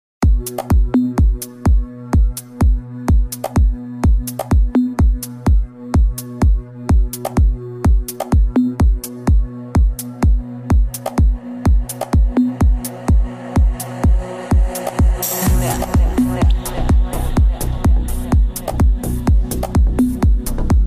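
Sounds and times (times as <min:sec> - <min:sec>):
electro club music ringtone: 0:00.2 - 0:20.8.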